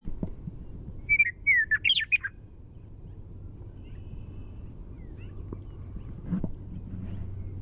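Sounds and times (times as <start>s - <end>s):
low hum: 0.0s - 7.6s
western meadowlark singing primary song: 0.6s - 6.1s.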